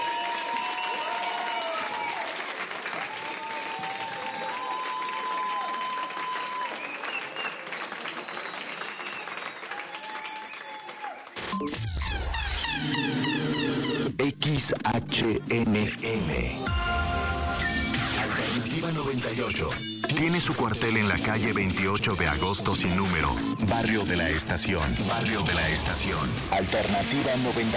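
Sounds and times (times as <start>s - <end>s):
audience applause: 0.0s - 11.5s
music: 11.4s - 27.7s
speech: 11.6s - 11.8s, 14.7s - 17.1s, 18.4s - 27.7s.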